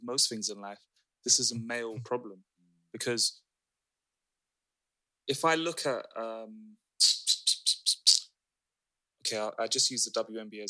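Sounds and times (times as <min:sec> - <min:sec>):
speech: 0:00.0 - 0:03.4, 0:05.3 - 0:07.2, 0:09.2 - 0:10.6
person imitating a bird chirping: 0:07.0 - 0:08.3.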